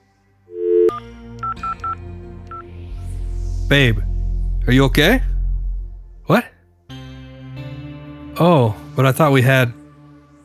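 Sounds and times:
telephone dial tone: 0.5s - 2.0s
telephone number dialed with touch-tone beeps: 0.5s - 2.6s
speech: 3.7s - 4.1s, 4.7s - 5.3s, 6.3s - 6.5s, 8.4s - 9.8s.

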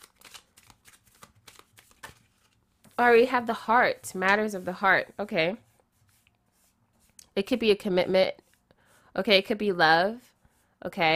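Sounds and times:
playing cards being shuffled and drawn by hand: 0.0s - 3.0s
speech: 3.0s - 5.7s, 7.4s - 8.4s, 9.2s - 11.1s.

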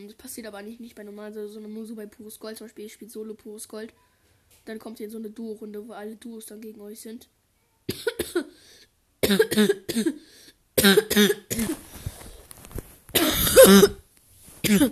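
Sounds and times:
speech: 0.0s - 11.8s, 13.6s - 14.0s, 14.7s - 14.9s
repeated heavy coughing: 7.9s - 8.6s, 9.2s - 11.9s, 13.2s - 14.0s, 14.6s - 14.9s.

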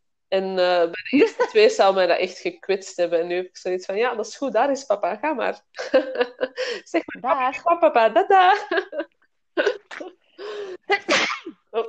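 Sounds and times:
speech: 0.3s - 11.8s
laughter: 5.8s - 6.6s, 8.4s - 9.1s
sharp sneeze: 11.0s - 11.6s.

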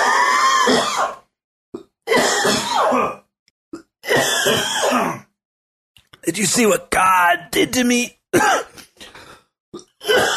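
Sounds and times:
speech: 0.7s - 1.2s, 6.3s - 8.8s
coughing and throat clearing: 1.8s - 5.2s, 8.3s - 9.1s, 9.8s - 10.3s.

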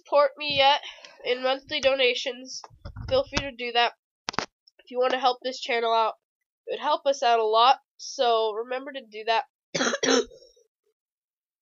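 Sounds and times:
speech: 0.1s - 4.0s, 4.9s - 10.3s
person with a bad fever coughing: 9.8s - 10.5s.

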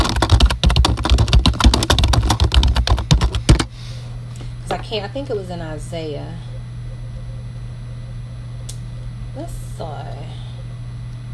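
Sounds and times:
rapid typing on a computer keyboard: 0.0s - 3.7s
speech: 4.9s - 6.5s, 9.4s - 10.4s.

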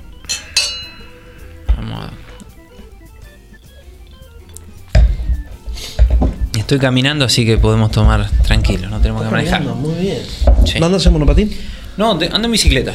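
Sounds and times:
wine glasses clinking in a toast: 0.2s - 1.7s
thumps: 4.9s - 6.6s, 7.4s - 9.2s, 10.4s - 11.3s
speech: 6.7s - 12.9s.

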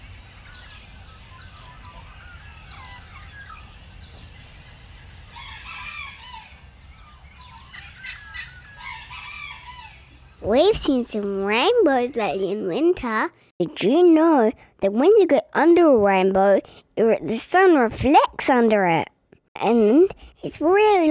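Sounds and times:
several birds calling and chirping at dawn outdoors: 0.0s - 12.8s
speech: 10.4s - 21.0s.

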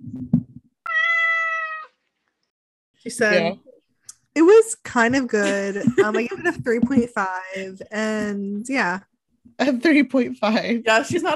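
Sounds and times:
speech: 0.2s - 0.5s, 3.0s - 3.6s, 4.6s - 11.3s
cat meowing: 0.8s - 2.0s.

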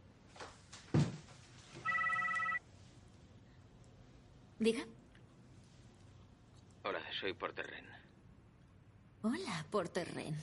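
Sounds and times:
mobile phone ringing with bright electronic tones: 1.8s - 2.6s
speech: 4.6s - 5.0s, 7.2s - 8.1s, 9.2s - 10.4s.

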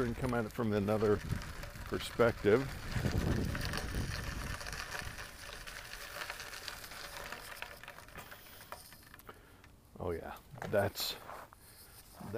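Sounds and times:
speech: 0.0s - 3.1s, 10.1s - 11.3s
bicycle ridden outdoors rolling: 0.0s - 12.3s
light patter: 0.0s - 12.3s
wind rush: 2.7s - 4.6s.

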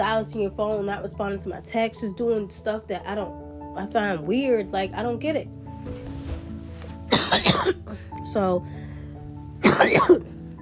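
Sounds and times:
speech: 0.2s - 6.0s, 7.3s - 8.8s, 9.8s - 10.3s
person coughing: 7.1s - 8.0s, 9.6s - 10.3s.

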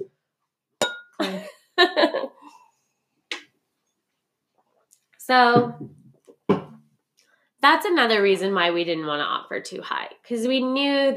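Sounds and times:
glasses clinking in a toast to buying a home: 0.8s - 1.3s
speech: 1.2s - 1.6s, 5.3s - 6.0s, 7.6s - 11.1s
burst of laughter: 1.2s - 2.5s.

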